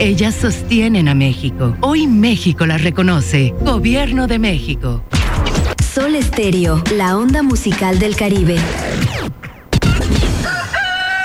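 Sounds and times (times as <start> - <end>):
speech: 0.0 - 5.2, 6.0 - 9.2
rooster crowing: 10.4 - 11.2.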